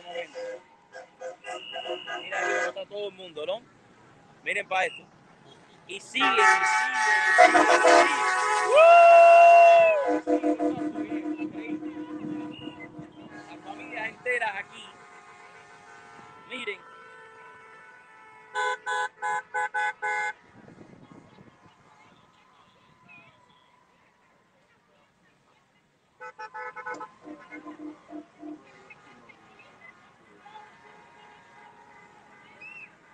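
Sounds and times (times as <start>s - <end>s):
car procession horns honking in Doral Miami: 0.0s - 3.1s, 4.8s - 8.9s, 9.9s - 20.4s, 26.2s - 33.1s
traffic noise: 0.0s - 33.1s
speech: 3.0s - 3.8s, 4.4s - 5.2s, 5.9s - 9.2s.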